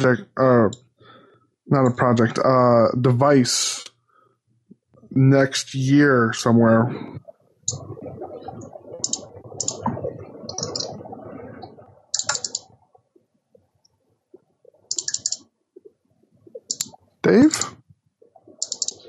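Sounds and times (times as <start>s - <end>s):
speech: 0.0s - 0.9s, 1.7s - 3.9s, 5.1s - 8.8s, 17.2s - 17.8s
computer keyboard typing: 12.2s - 12.6s, 14.9s - 15.4s, 16.7s - 17.0s, 18.6s - 19.0s
computer keyboard key clicks: 14.9s - 15.4s, 18.6s - 19.0s.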